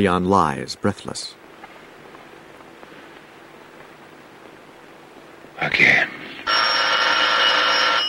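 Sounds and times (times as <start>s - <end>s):
speech: 0.0s - 1.4s, 5.6s - 6.1s
telephone bell ringing in a buzzing burst: 6.5s - 8.0s.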